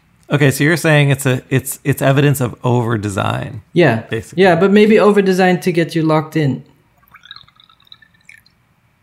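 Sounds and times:
speech: 0:00.3 - 0:06.7
tea being poured into a cup: 0:07.0 - 0:08.5.

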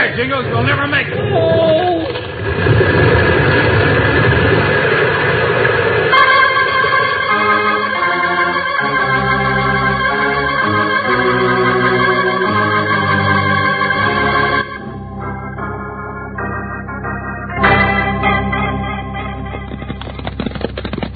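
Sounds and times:
avalanche of rocks crashing down a mountainside: 0:00.0 - 0:08.1, 0:15.2 - 0:21.1
speech: 0:00.2 - 0:03.0
steady droning tonal sound: 0:06.1 - 0:20.4.

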